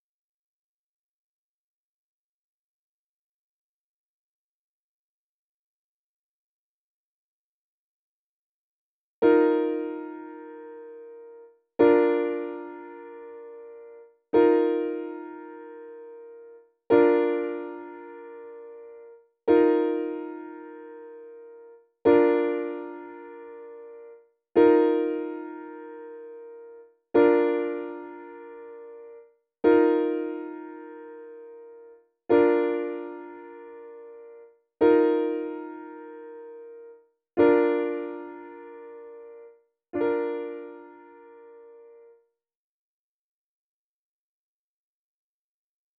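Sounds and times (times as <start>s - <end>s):
piano song: 9.2s - 42.2s.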